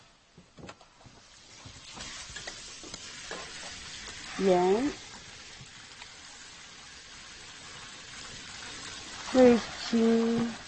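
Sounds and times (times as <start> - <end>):
vegetables stir-frying and sizzling in a pan: 1.1 - 10.6
utensil clanking and scraping a pan while stirring: 2.0 - 3.8
speech: 4.4 - 5.0.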